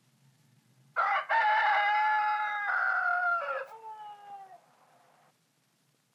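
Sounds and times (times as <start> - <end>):
rooster crowing: 1.0 - 5.3.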